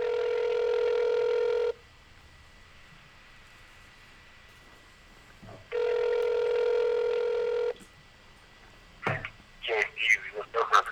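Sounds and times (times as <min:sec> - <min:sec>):
long steady electronic phone ring tones: 0:00.0 - 0:01.8, 0:05.7 - 0:07.8
faint voice answering the phone: 0:09.6 - 0:10.9.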